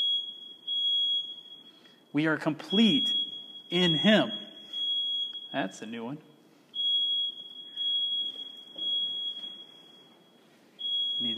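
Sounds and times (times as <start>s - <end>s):
smoke detector beeping: 0.0s - 6.0s, 6.7s - 11.3s
speech: 2.1s - 4.4s, 5.5s - 6.3s.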